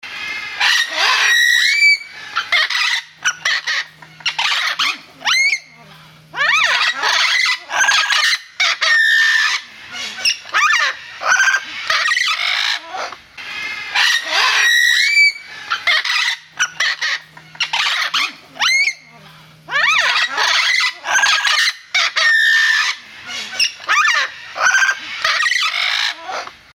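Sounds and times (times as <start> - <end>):
Mealy Amazon parrot calls: 0.1 - 26.7.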